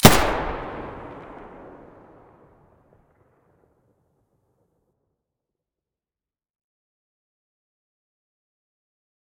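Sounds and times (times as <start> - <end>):
UMP45 weapon firing: 0.0 - 2.3.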